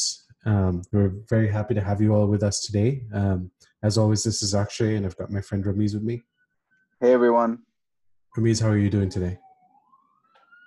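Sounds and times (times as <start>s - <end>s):
speech: 0.0s - 6.3s, 7.0s - 7.7s, 8.4s - 9.4s
faint emergency siren wailing: 8.4s - 10.6s.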